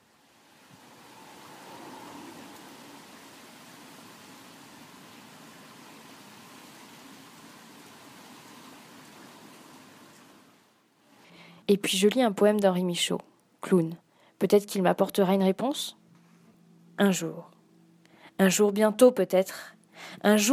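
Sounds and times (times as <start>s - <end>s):
steady rain falling: 0.0s - 11.0s
speech: 11.7s - 16.0s, 17.0s - 17.5s, 18.4s - 20.5s.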